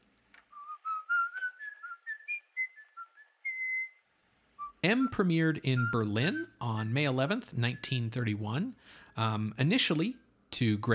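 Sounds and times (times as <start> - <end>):
man whistling a melodic tune on film soundtrack: 0.5 - 8.3
speech: 4.8 - 10.9.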